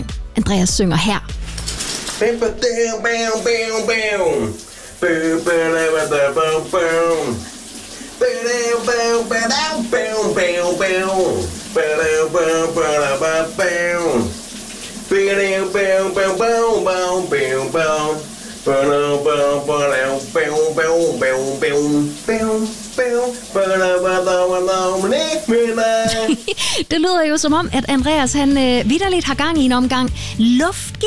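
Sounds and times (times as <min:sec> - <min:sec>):
speech: 0:00.4 - 0:01.4, 0:02.2 - 0:07.5, 0:08.2 - 0:14.4, 0:15.1 - 0:31.0
running shower water hissing: 0:01.3 - 0:31.0
man singing melodic phrases: 0:02.2 - 0:07.5, 0:08.2 - 0:14.4, 0:15.1 - 0:26.5.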